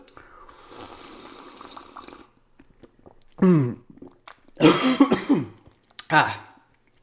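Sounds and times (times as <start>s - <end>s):
freshly tapped caffeinated apple spritzer poured into a glass: 0.6s - 2.3s
person coughing after choking on a drink: 3.4s - 3.8s, 4.6s - 5.6s
speech: 3.4s - 3.8s, 6.1s - 6.4s.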